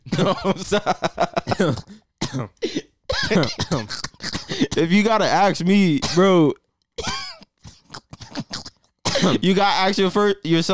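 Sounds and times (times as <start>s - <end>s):
person coughing and hacking: 0.1s - 0.5s, 1.4s - 4.9s, 6.0s - 6.4s, 7.0s - 9.4s
speech: 0.1s - 2.0s, 4.8s - 6.6s, 9.2s - 10.7s.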